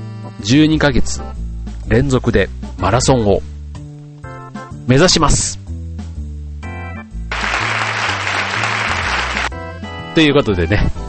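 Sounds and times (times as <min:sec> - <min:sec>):
speech: 0:00.3 - 0:03.5, 0:04.8 - 0:05.6, 0:10.2 - 0:11.0
crowd applause: 0:07.3 - 0:09.5.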